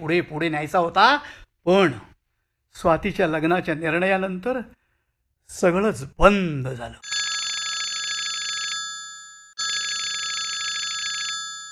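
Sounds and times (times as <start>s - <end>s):
speech: 0.0s - 2.1s, 2.7s - 4.8s, 5.5s - 7.1s
telephone bell ringing: 7.0s - 11.6s.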